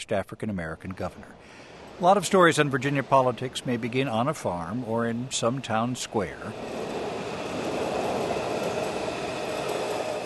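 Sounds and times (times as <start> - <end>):
speech: 0.0 - 6.8
metro train whooshing past: 1.5 - 10.2.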